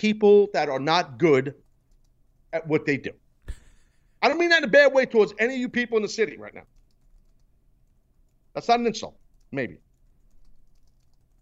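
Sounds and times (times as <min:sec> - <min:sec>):
speech: 0:00.0 - 0:01.6, 0:02.5 - 0:03.2, 0:04.2 - 0:06.7, 0:08.6 - 0:09.8
typing on a computer keyboard: 0:01.6 - 0:02.2, 0:06.6 - 0:11.3.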